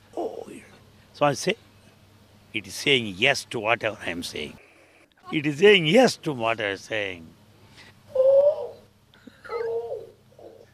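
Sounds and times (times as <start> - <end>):
low hum: 0.0 - 10.7
speech: 1.2 - 1.7, 2.5 - 4.6, 5.3 - 7.4
cuckoo calling: 8.1 - 10.7.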